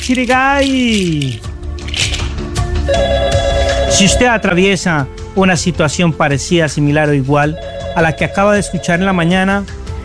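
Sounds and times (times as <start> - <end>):
speech: 0.0 - 2.1, 2.9 - 9.8
telephone ringing for an incoming call: 2.9 - 4.6, 7.4 - 9.3.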